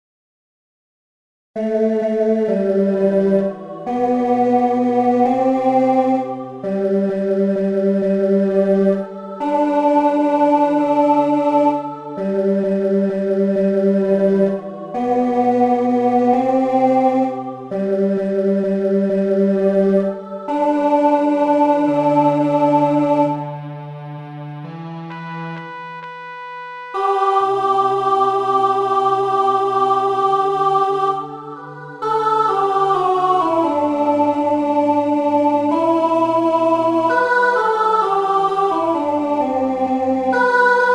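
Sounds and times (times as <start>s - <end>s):
choir singing: 1.6s - 24.7s, 26.9s - 40.9s
alto instrument tuning: 20.5s - 29.4s.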